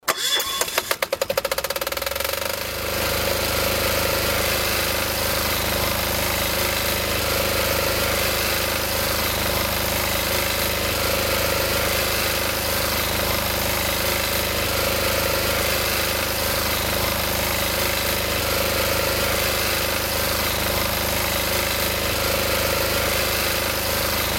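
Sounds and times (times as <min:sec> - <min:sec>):
diesel generator running: 0:00.0 - 0:24.3.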